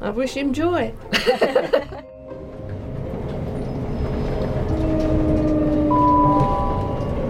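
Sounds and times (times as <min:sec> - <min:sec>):
speech: 0:00.0 - 0:02.1
train carriage in motion approaching a station: 0:00.0 - 0:07.2
laughter: 0:01.1 - 0:02.1
thin whining tones from train motors or brakes: 0:02.4 - 0:07.2.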